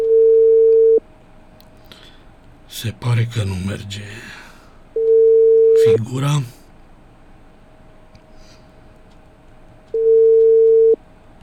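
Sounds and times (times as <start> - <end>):
unanswered telephone ringing tone: 0.0 - 1.0, 5.0 - 6.0, 10.0 - 11.0
faint hiss: 1.1 - 11.3
speech: 2.7 - 4.4, 5.8 - 6.6.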